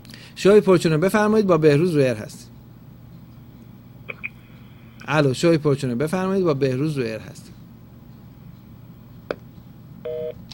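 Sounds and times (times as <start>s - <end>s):
low hum: 0.0s - 10.5s
speech: 0.4s - 2.4s, 5.1s - 7.5s
telephone line tones as a call is cut off: 10.0s - 10.4s.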